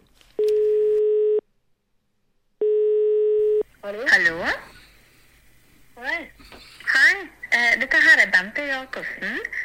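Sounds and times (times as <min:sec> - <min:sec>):
faint noise: 0:00.0 - 0:09.6
telephone ringback tones while dialing: 0:00.4 - 0:01.4, 0:02.6 - 0:03.6
speech: 0:03.9 - 0:04.7, 0:08.4 - 0:09.6.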